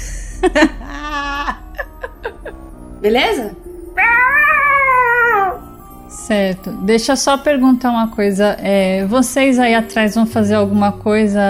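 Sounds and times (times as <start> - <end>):
speech: 0.4 - 0.8, 3.0 - 3.7, 6.3 - 11.4
person imitating a cat meow: 4.0 - 5.7.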